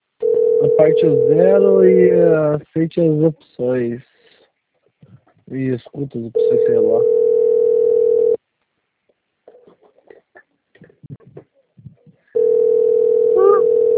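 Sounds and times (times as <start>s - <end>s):
telephone ringing tone of an outgoing call: 0.2s - 2.2s, 6.4s - 8.4s, 12.4s - 13.9s
speech: 0.7s - 4.1s, 5.5s - 7.2s.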